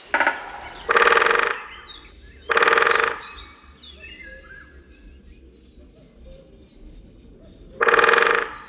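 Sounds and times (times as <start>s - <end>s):
woodpecker drumming on a metal lamppost: 0.0s - 3.5s, 7.7s - 8.6s
faint birdsong chirps and trills: 0.0s - 8.6s.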